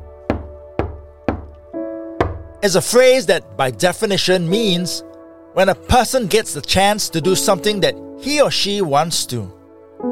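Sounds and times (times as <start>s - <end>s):
knocking on a door: 0.3s - 1.6s, 2.2s - 2.6s
speech: 2.6s - 9.6s.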